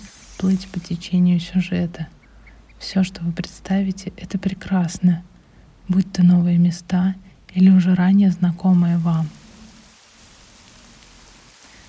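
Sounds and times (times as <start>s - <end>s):
faint low rumble: 0.0s - 11.8s
speech: 0.4s - 2.2s, 2.8s - 5.3s, 5.9s - 9.4s
rain pattering on surfaces at a dacha: 8.6s - 11.8s.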